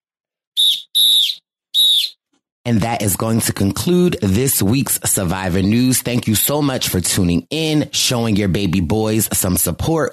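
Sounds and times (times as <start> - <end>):
shrill steady-pitched whistle blasts: 0.6 - 2.2
speech: 2.6 - 10.1.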